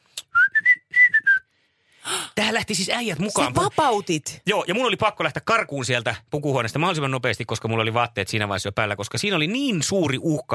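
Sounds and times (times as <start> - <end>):
person in a cinema audience whistling along with a film's whistling part: 0.2 - 1.5
speech: 2.4 - 10.5.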